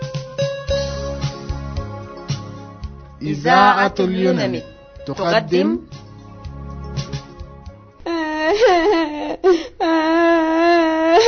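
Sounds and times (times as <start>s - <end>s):
speech: 3.2s - 6.0s, 8.6s - 10.8s
girl crying with high wavering wails: 8.0s - 11.2s.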